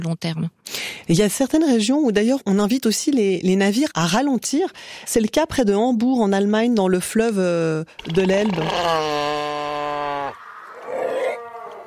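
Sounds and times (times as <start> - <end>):
speech: 0.0 - 9.4
seal droning moan underwater near Hamburg Germany: 8.3 - 11.8.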